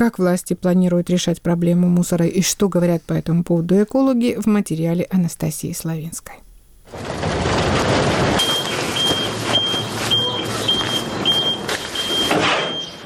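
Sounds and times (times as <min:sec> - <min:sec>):
speech: 0:00.0 - 0:07.4
heavy diesel engines of large vehicles rumbling at a landfill: 0:07.0 - 0:13.0
garbage truck reversing beeps at a landfill: 0:08.4 - 0:13.0.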